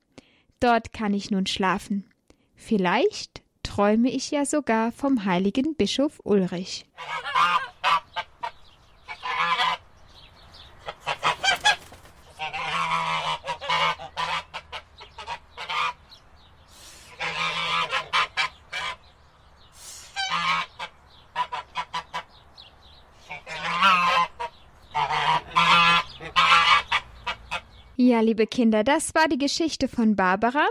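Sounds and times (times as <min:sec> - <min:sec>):
speech: 0:00.6 - 0:07.3, 0:28.2 - 0:30.6
goose cackling and honking: 0:07.0 - 0:10.0, 0:10.6 - 0:16.2, 0:17.0 - 0:19.2, 0:20.0 - 0:22.4, 0:23.2 - 0:28.0.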